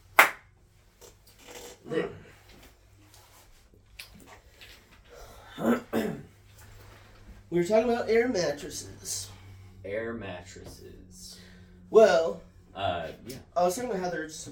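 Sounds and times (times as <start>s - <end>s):
low hum: 0.0s - 14.5s
hand clap: 0.1s - 0.5s
speech: 7.6s - 9.2s, 9.9s - 11.2s, 11.9s - 14.5s.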